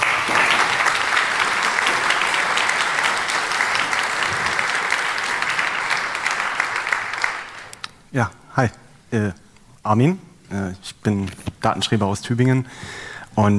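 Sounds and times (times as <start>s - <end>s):
sustained applause from a large audience: 0.0s - 7.9s
speech: 8.1s - 13.5s.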